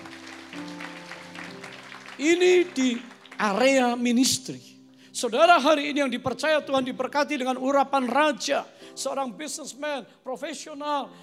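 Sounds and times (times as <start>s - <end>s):
church audience applauding: 0.0s - 4.3s
speech: 2.2s - 11.2s.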